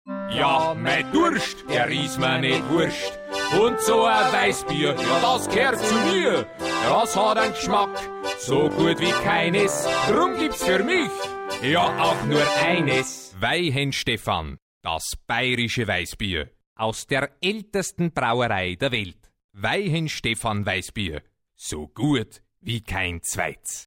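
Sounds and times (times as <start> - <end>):
person singing: 0.2 - 13.3
voice-over: 3.6 - 23.8.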